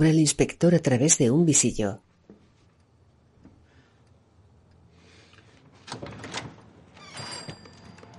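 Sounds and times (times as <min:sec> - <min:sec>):
speech: 0:00.0 - 0:02.1
door latch rattling: 0:05.8 - 0:08.1.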